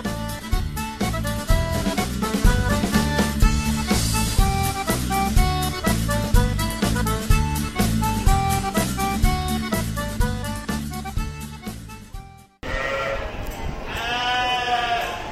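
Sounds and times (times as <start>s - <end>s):
music: 0.0s - 12.6s
sheep bleating in a livestock pen at a sheep gathering: 12.6s - 15.3s.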